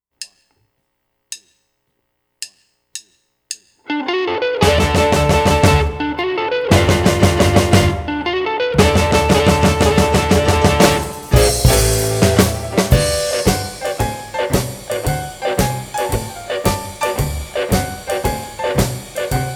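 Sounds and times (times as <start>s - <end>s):
West Coast Swing blues music in D: 3.9s - 19.5s.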